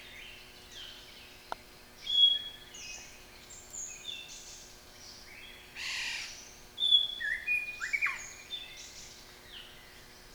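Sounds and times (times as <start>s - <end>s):
white-rumped shama singing: 0.0s - 10.3s.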